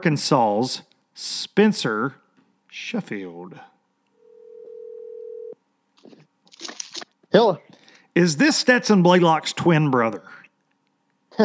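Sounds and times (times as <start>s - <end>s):
speech: 0.0s - 3.7s, 7.3s - 10.4s
telephone dial tone while placing a call: 4.2s - 5.6s.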